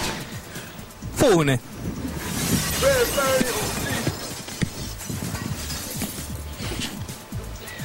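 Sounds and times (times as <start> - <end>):
faint murmur: 0.3 - 7.8
speech: 1.2 - 2.0
thrown record smashing and shattering: 2.0 - 6.3
clattering fragments of a shattered record: 2.0 - 6.4.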